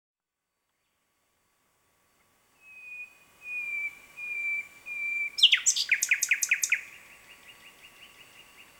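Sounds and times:
common nightingale Luscinia megarhynchos whistling pure notes: 2.6 - 7.0.

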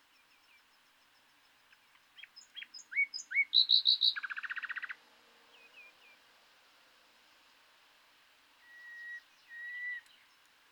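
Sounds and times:
common nightingale Luscinia megarhynchos singing: 0.0 - 6.3, 8.5 - 10.6.

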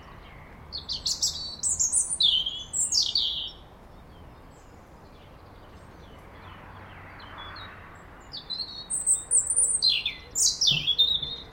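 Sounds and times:
European robin Erithacus rubecula singing: 0.0 - 11.5.

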